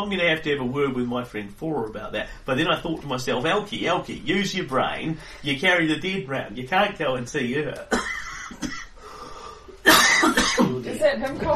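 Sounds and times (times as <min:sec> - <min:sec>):
speech: 0:00.0 - 0:08.8, 0:10.6 - 0:11.5
person coughing: 0:07.9 - 0:09.0, 0:09.8 - 0:10.9.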